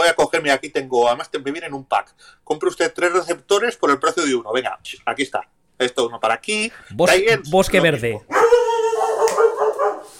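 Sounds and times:
speech: 0:00.1 - 0:08.4
dog barking loudly and insistently: 0:08.3 - 0:10.1.

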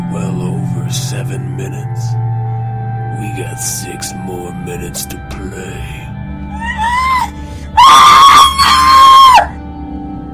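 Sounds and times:
speech: 0:01.1 - 0:02.5, 0:03.1 - 0:06.7
person screaming loudly and up: 0:06.5 - 0:09.6.

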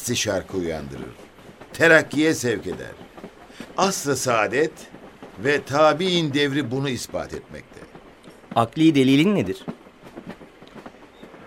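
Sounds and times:
speech: 0:00.0 - 0:03.1, 0:03.8 - 0:07.9, 0:08.6 - 0:09.8
train rumbling out of a tunnel with wheels clattering over rails: 0:00.0 - 0:11.4.

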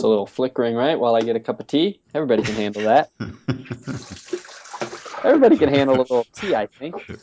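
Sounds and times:
speech: 0:00.0 - 0:07.2
laughter: 0:02.4 - 0:04.4, 0:05.1 - 0:07.2
water running from a tap: 0:04.0 - 0:05.6.

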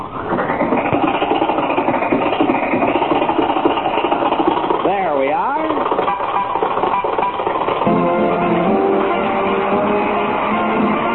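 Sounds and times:
old car engine sputtering, starting and chugging: 0:00.0 - 0:11.1.

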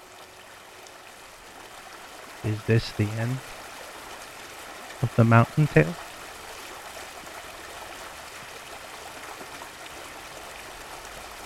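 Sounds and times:
steady rush of flowing river water: 0:00.0 - 0:11.4
speech: 0:02.4 - 0:03.5, 0:05.0 - 0:06.0.

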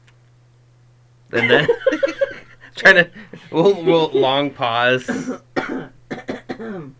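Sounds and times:
speech: 0:01.3 - 0:02.1, 0:02.8 - 0:05.5, 0:06.6 - 0:06.9
laughter: 0:01.3 - 0:04.4
harsh throaty coughing: 0:05.1 - 0:06.9.

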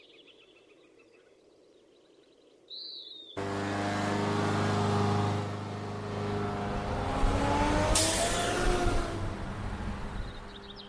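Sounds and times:
bird chirping: 0:00.0 - 0:03.4, 0:10.0 - 0:10.8
motor roar: 0:03.4 - 0:10.8.

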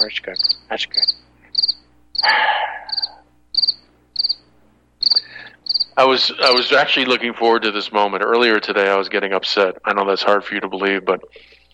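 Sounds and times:
speech: 0:00.0 - 0:01.3, 0:02.2 - 0:03.0, 0:06.0 - 0:11.5
crickets chirping in pulsed bursts: 0:00.0 - 0:06.8.

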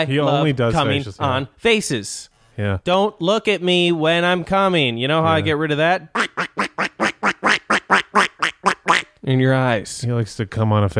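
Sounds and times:
speech: 0:00.0 - 0:06.4, 0:09.3 - 0:10.9
duck quacking: 0:06.1 - 0:09.2.

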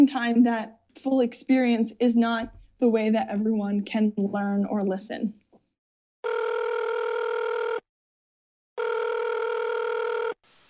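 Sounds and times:
speech: 0:00.1 - 0:05.4
telephone ringing for an incoming relay call: 0:06.2 - 0:07.8, 0:08.8 - 0:10.4.

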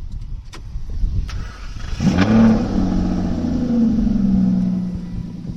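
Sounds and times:
Aston Martin Rapide engine starting and revving: 0:01.1 - 0:05.5.

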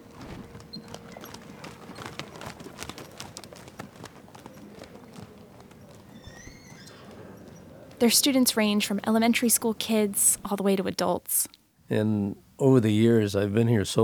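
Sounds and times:
horse hooves clip-clopping at a horse farm in Williston: 0:00.0 - 0:10.0
speech: 0:08.0 - 0:14.0.

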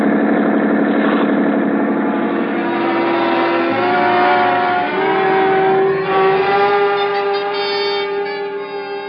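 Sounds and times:
police boat engine droning: 0:00.0 - 0:09.0.

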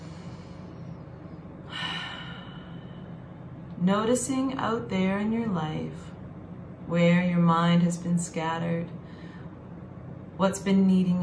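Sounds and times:
deep breath in a calming exercise: 0:00.0 - 0:01.0, 0:01.6 - 0:03.5, 0:09.0 - 0:09.6
low steady hum: 0:00.0 - 0:11.2
speech: 0:03.8 - 0:06.1, 0:06.9 - 0:09.0, 0:10.4 - 0:11.2.

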